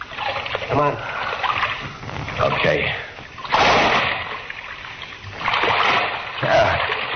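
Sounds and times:
water churning and sloshing in a dark passage: 0:00.0 - 0:07.1
speech: 0:00.7 - 0:01.2, 0:02.4 - 0:03.1
splash of a person dropping into waist-deep water in a dark passage: 0:03.4 - 0:04.7, 0:05.4 - 0:07.1.

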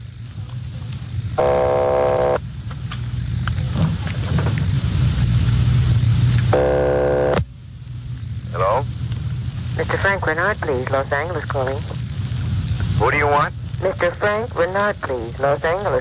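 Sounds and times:
steady low hum: 0:00.0 - 0:15.9
speech: 0:01.4 - 0:01.7, 0:10.0 - 0:12.0, 0:13.0 - 0:15.9
buzzy telephone line ringing tones: 0:01.4 - 0:02.4.

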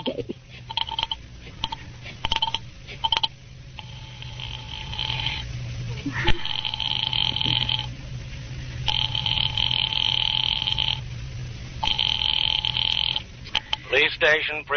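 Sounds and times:
telephone ringing over a phone line: 0:00.0 - 0:05.4, 0:06.4 - 0:07.9, 0:08.9 - 0:11.0, 0:11.8 - 0:14.2
steady low hum: 0:00.0 - 0:14.7
speech: 0:14.4 - 0:14.7.

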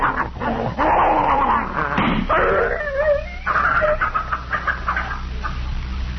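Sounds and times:
poisoned dog whining with high strained cries: 0:00.0 - 0:04.3
poisoned dog snarling and yelping in pain: 0:00.0 - 0:05.1.

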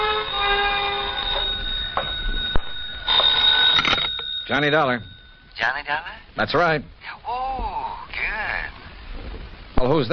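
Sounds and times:
telephone bell ringing with a bright metallic trill: 0:00.0 - 0:05.6
speech: 0:04.5 - 0:07.4, 0:09.8 - 0:10.1.

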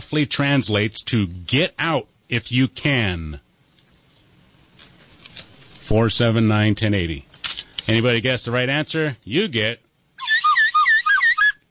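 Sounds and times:
speech: 0:00.1 - 0:03.4, 0:05.9 - 0:07.3, 0:07.9 - 0:10.4
slightly used slide whistle warbling in looping pitch glides: 0:10.2 - 0:11.6.

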